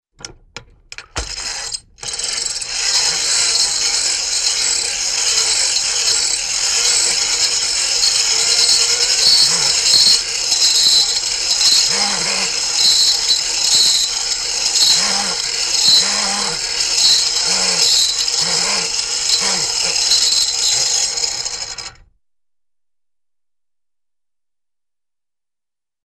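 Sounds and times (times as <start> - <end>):
rapid cartoon winding: 1.2 - 22.0
sharp high-pitched metallic cartoon scrapes: 1.3 - 21.9.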